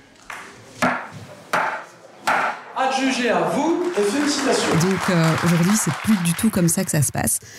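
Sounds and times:
auction gavel striking wooden block: 0.8s - 2.7s
speech: 3.0s - 7.5s.

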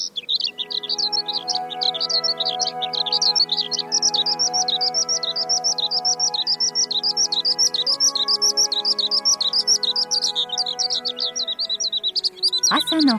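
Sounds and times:
Eurasian skylark singing over a wheat field in the morning: 0.3s - 13.1s
soft sustained musical tones: 0.5s - 13.1s.

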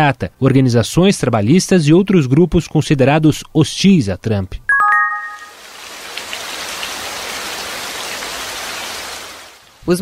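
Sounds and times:
speech: 0.0s - 4.7s
brief tonal chime: 4.7s - 5.6s
steady rain: 5.4s - 9.9s.

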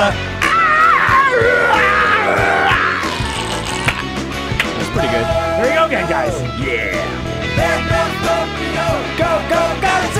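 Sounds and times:
live human vocal scream with wavering pitch: 0.4s - 4.1s
rhythmic thumping music track: 1.2s - 10.1s.

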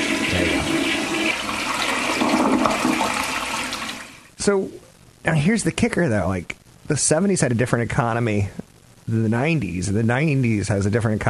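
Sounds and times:
toilet flushing: 0.0s - 4.3s
speech: 4.4s - 11.2s.

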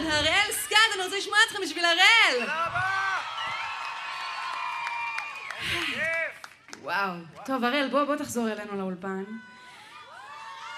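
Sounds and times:
audience cheering at a live performance: 0.6s - 6.5s, 9.5s - 10.7s
speech: 1.0s - 3.1s, 6.8s - 9.5s.

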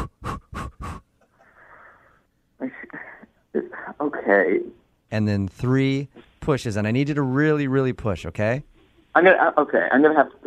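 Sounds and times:
quick panting breaths before pushing in childbirth: 0.0s - 2.2s
speech: 4.0s - 10.4s.

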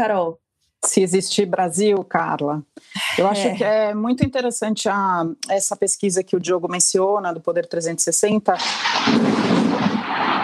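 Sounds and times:
speech: 0.0s - 10.2s
heavy thunder rumbling: 8.6s - 10.4s.

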